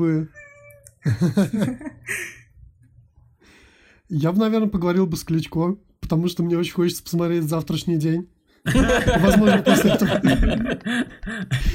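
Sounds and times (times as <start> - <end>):
speech: 0.0 - 0.4, 1.0 - 2.4, 4.1 - 11.7
cat meowing: 0.2 - 1.0
laughter: 1.0 - 2.4, 8.7 - 11.7.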